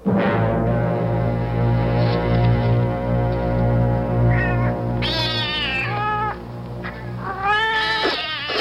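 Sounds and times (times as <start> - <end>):
steady low hum: 0.1 - 8.1
several cats meowing while waiting for food: 4.3 - 8.5.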